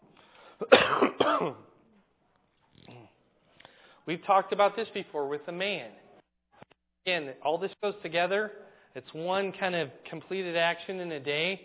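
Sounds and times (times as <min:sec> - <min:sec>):
harsh rasping coughing: 0:00.6 - 0:01.7
speech: 0:00.6 - 0:01.7, 0:04.0 - 0:06.0, 0:07.0 - 0:11.6
person clearing throat: 0:00.6 - 0:01.8.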